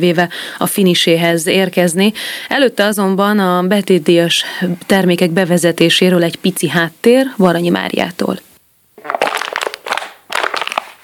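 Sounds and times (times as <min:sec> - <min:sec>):
speech: 0:00.0 - 0:09.2
plastic bottles being crushed for recycling: 0:09.0 - 0:11.0.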